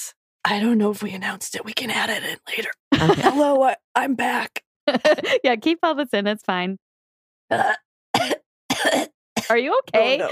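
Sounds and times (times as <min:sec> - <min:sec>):
speech: 0:00.0 - 0:06.8, 0:07.5 - 0:10.2
laughter: 0:02.9 - 0:03.6, 0:04.9 - 0:05.4, 0:10.1 - 0:10.2
harsh cough after smoking: 0:07.5 - 0:10.2.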